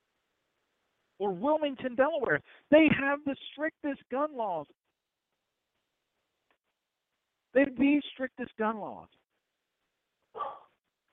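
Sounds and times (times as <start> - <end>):
speech: 1.2 - 4.8, 7.6 - 9.2
female dog barking: 10.3 - 10.8.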